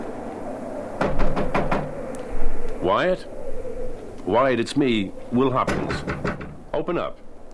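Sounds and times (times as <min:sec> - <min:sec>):
knocking on a door: 0:01.0 - 0:01.9, 0:05.7 - 0:06.6
speech: 0:02.8 - 0:03.4, 0:04.2 - 0:07.2.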